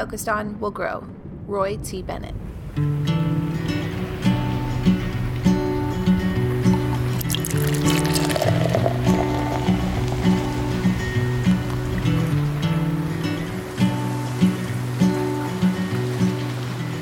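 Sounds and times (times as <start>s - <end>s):
speech: 0.0s - 3.2s
soft rhythmic musical backing: 2.8s - 16.9s
coffee pouring into a cup: 6.7s - 12.1s.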